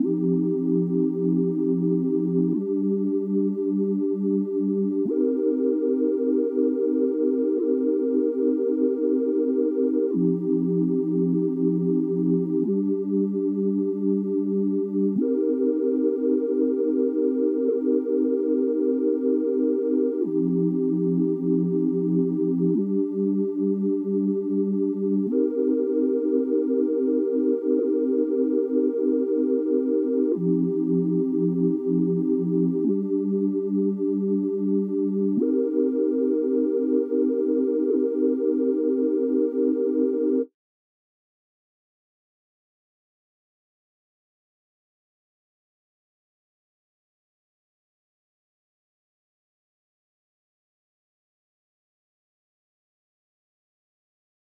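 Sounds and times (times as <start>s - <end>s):
sine wave synth chorus melody in C minor at 95 BPM: 0.0s - 40.5s.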